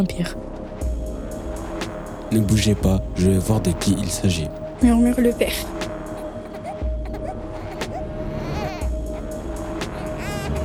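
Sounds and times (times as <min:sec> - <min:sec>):
speech: 0:00.0 - 0:00.5, 0:02.3 - 0:05.8
steady low rumble: 0:00.0 - 0:10.6
baby fussing and crying in short wavering wails: 0:05.5 - 0:10.6.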